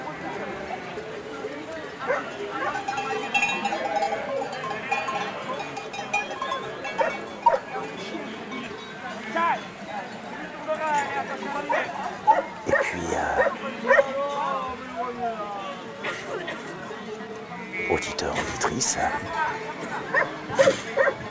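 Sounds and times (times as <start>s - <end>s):
murmured voices: 0.0s - 21.2s
clinking bells: 2.3s - 8.9s.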